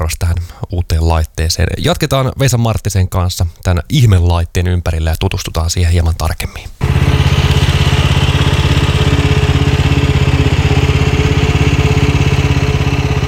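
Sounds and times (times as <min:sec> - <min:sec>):
speech: 0:00.1 - 0:08.1
motorized beach-sweeping machine engine rattling putter: 0:06.8 - 0:13.2.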